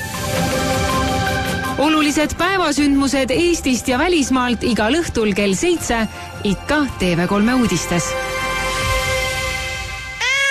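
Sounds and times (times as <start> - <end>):
steady tonal background: 0.0 - 10.2
speech: 1.8 - 8.3
orange cat meowing: 10.2 - 10.4.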